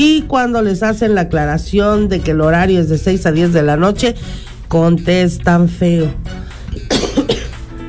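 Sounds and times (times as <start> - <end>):
speech: 0.0 - 7.0
person coughing hard in a fit: 6.8 - 7.6.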